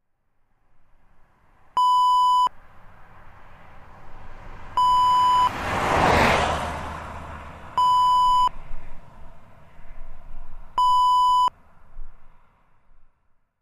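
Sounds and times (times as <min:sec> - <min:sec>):
car passing: 0:00.4 - 0:13.4.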